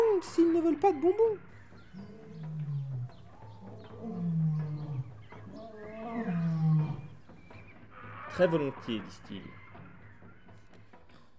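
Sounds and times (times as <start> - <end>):
speech: 0.2 - 2.2, 8.4 - 9.6
lions roaring with deep growling calls: 1.8 - 8.7.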